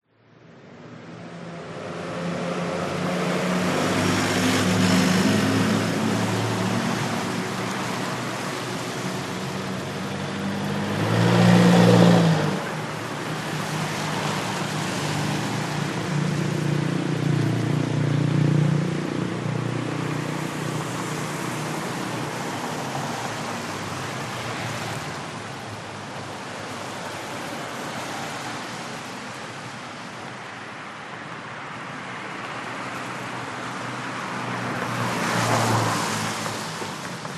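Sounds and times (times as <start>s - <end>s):
cars on a wet road in Chiang Mai Thailand: 0.4s - 37.3s
motorcycles in traffic in Chiang Mai Thailand: 1.4s - 25.8s.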